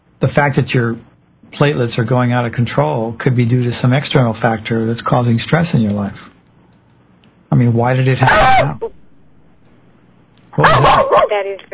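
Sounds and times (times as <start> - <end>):
speech: 0.2 - 6.4, 7.5 - 9.0, 10.6 - 11.7
dog barking loudly: 10.6 - 11.4.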